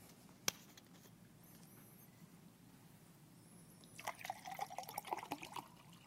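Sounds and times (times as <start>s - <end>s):
water poured into a glass: 4.0s - 6.0s.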